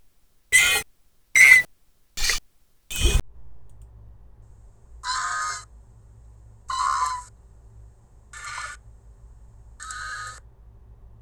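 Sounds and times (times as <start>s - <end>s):
squeal: 0.6s - 0.8s, 1.4s - 3.2s.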